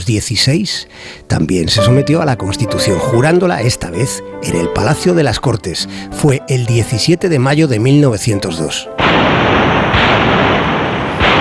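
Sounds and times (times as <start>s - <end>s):
speech: 0.0s - 9.4s
cannon salute blasts: 9.0s - 11.3s.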